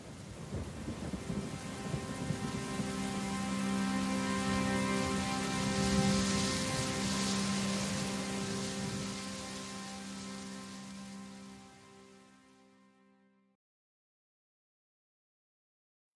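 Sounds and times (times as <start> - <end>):
low thunder rumbling: 0.0 - 3.0
steady rain hissing: 0.0 - 12.6.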